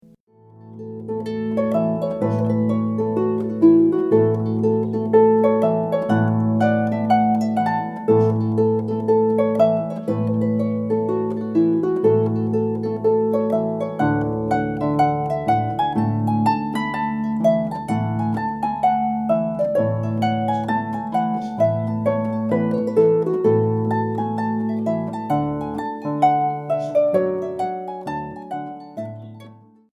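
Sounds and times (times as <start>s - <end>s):
harp playing a traditional Scottish wedding march: 0.6s - 29.7s.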